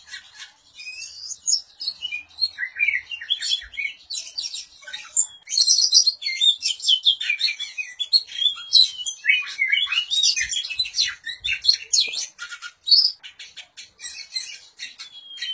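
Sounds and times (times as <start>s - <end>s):
Oriental magpie-robin singing sweet whistles, rapid chirps and harsh buzzy notes: 0.0s - 15.5s.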